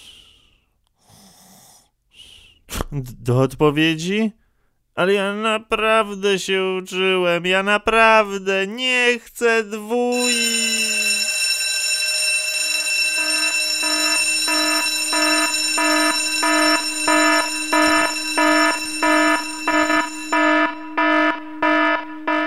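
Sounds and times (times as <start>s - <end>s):
speech: 2.9s - 4.4s, 5.0s - 10.9s
alarm clock ringing with a bright harmonic electronic tone: 10.1s - 22.4s.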